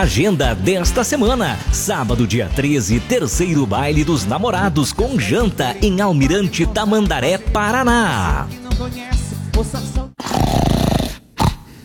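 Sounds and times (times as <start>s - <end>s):
speech: 0.0s - 10.0s
groaning vocal sounds: 10.2s - 11.7s
loud rasping snore with a throaty rattling drone: 10.2s - 11.8s.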